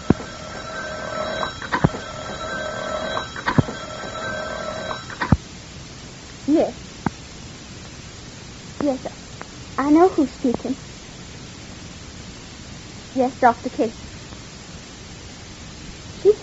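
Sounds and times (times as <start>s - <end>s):
telephone ringing with a sustained buzzing ring: 0.0s - 5.4s
steady hiss: 0.0s - 16.4s
speech: 8.8s - 9.2s, 9.8s - 10.9s, 13.2s - 14.1s.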